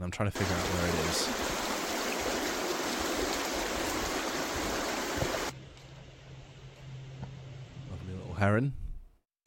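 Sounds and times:
speech: 0.0 - 1.7, 8.4 - 8.8
water rushing over a river weir: 0.4 - 5.5.

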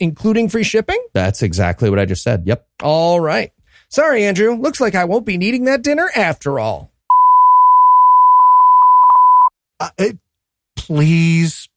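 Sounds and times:
speech: 0.0 - 6.9, 9.8 - 10.2, 10.8 - 11.7
censor bleep tone: 7.1 - 9.5.

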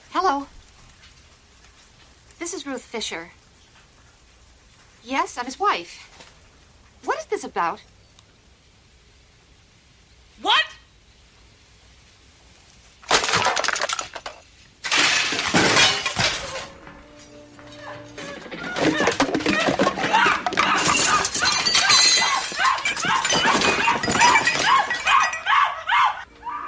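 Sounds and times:
speech: 0.2 - 0.6, 2.4 - 3.4, 5.0 - 6.3, 7.3 - 8.0, 10.4 - 10.7
dishes and objects hurled off kitchen counters: 13.1 - 25.5
glass crashing and shattering: 13.1 - 25.8
dog barking: 20.1 - 26.2.

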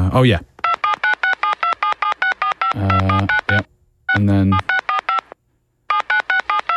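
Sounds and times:
speech: 0.2 - 0.5, 2.8 - 4.7
telephone keypad tones: 0.6 - 6.7.

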